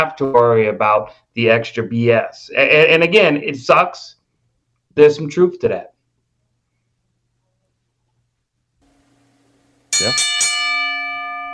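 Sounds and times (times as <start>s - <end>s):
speech: 0.0s - 4.2s, 5.0s - 5.9s, 10.0s - 10.5s
bell struck with bright metallic tone: 9.9s - 11.5s.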